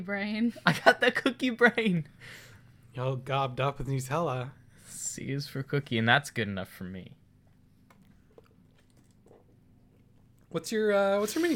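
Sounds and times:
speech: 0.0 - 7.2, 10.5 - 11.5
low steady hum: 0.0 - 11.2
person gulping a drink: 7.9 - 10.5.

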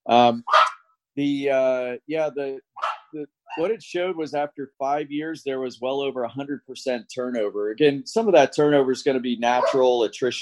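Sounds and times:
speech: 0.1 - 0.6, 1.2 - 10.3
dogs barking at a passerby: 0.4 - 0.8, 2.8 - 3.6, 9.6 - 9.9.

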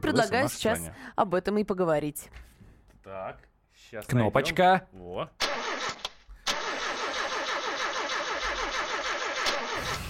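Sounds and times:
speech: 0.0 - 6.0
car engine cranking, failing to start: 6.5 - 10.0.

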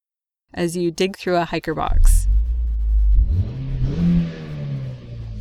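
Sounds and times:
speech: 0.6 - 2.3
car engine revving heard from inside the car: 2.2 - 5.3.

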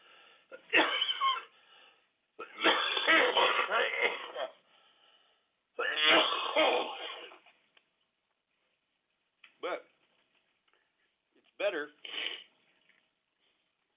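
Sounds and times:
person coughing and hacking up phlegm: 0.5 - 1.5, 2.4 - 4.6, 5.8 - 7.5.

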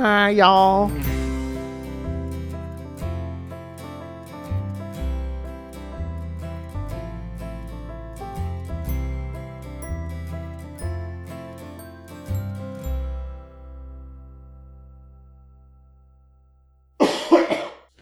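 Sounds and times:
speech: 0.0 - 1.1
plucked musical notes: 0.5 - 15.7
man coughing: 17.0 - 17.9.

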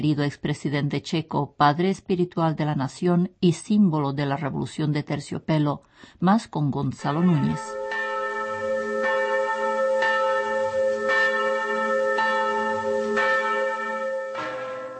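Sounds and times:
speech: 0.0 - 7.9
church bells ringing: 7.1 - 14.9.

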